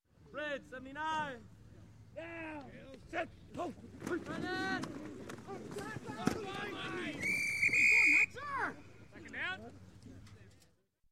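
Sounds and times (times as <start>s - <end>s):
football game: 2.2s - 10.0s.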